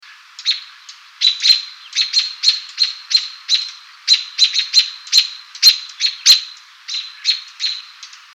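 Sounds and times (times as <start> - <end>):
American robin nocturnal flight calls: 0.0 - 8.3.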